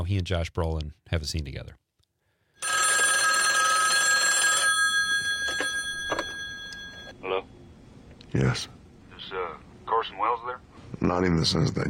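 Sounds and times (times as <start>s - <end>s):
speech: 0.0s - 1.8s, 8.3s - 8.8s, 10.0s - 11.8s
old-style telephone bell ringing: 2.6s - 7.2s.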